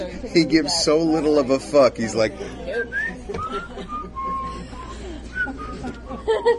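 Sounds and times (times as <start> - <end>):
low busy voices: 0.0 - 6.5
speech: 0.2 - 3.0
laughter: 2.5 - 6.5
man whistling a short melodic tune on a record: 2.8 - 6.0.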